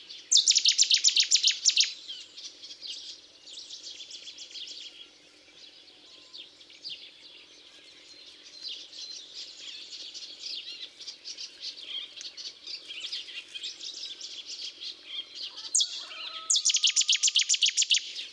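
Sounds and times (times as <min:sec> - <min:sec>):
cetti's warbler: 0:00.3 - 0:01.9, 0:15.5 - 0:18.1.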